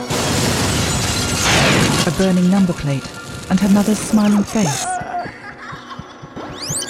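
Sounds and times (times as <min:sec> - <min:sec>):
car exploding with a loud blast: 0:00.1 - 0:02.2
speech: 0:02.1 - 0:04.9
laughter: 0:05.0 - 0:06.6.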